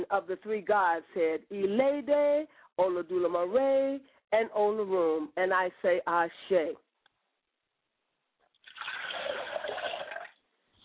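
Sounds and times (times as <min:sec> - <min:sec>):
speech: 0:00.0 - 0:06.8
liquid poured out as a libation, splashing: 0:08.6 - 0:10.4.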